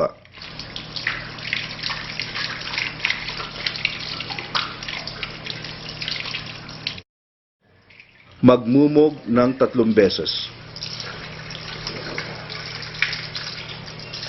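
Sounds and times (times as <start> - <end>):
water running from a tap while washing hands during ablution: 0.0 - 7.0, 7.7 - 14.2
speech: 8.4 - 10.6.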